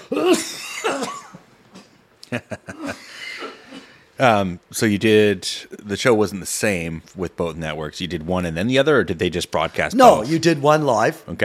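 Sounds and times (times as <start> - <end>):
sharp rapid coughs: 0.0 - 1.9, 2.7 - 4.0
speech: 4.2 - 11.4.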